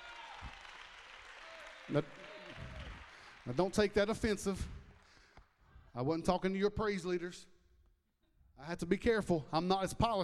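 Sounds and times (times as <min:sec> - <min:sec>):
audience clapping in praise: 0:00.0 - 0:05.6
speech: 0:01.9 - 0:02.7, 0:03.4 - 0:04.8, 0:06.0 - 0:07.5, 0:08.6 - 0:10.2.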